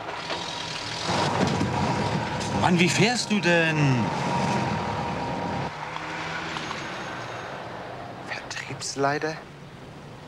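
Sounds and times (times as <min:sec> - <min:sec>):
truck driving past: 0:00.0 - 0:08.2
speech: 0:02.6 - 0:04.3, 0:09.0 - 0:09.5.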